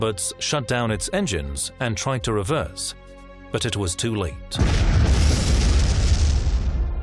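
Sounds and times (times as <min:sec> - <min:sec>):
speech: 0:00.0 - 0:04.9
magnetic sea mine exploding against a warship's hull: 0:04.6 - 0:07.0.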